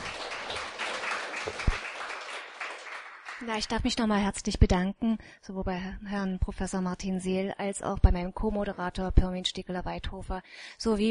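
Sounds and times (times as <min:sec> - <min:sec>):
audience applauding a speaker after a lecture: 0:00.0 - 0:03.5
speech: 0:03.4 - 0:11.1.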